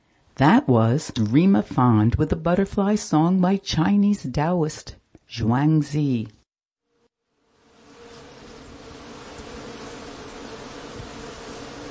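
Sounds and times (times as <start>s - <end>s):
speech: 0.4s - 6.4s
bees buzzing in blossoming apple tree: 7.4s - 11.8s.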